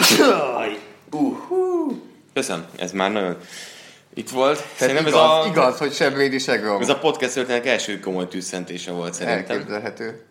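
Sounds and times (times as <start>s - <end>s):
person sneezing: 0.0s - 0.6s
speech: 0.1s - 1.3s, 2.4s - 10.3s.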